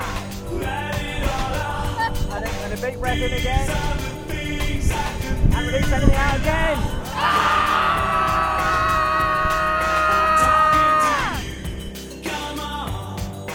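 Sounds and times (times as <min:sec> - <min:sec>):
burst of mixed voices: 0:00.0 - 0:11.7
speech: 0:02.8 - 0:08.0
group screaming to release tension: 0:07.1 - 0:11.6.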